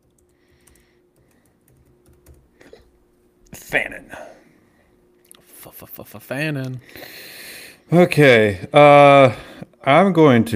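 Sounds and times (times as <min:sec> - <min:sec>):
typing on a computer keyboard: 0:00.0 - 0:02.4
low steady hum: 0:00.0 - 0:10.5
speech: 0:03.7 - 0:04.4, 0:05.7 - 0:07.3, 0:07.9 - 0:10.5.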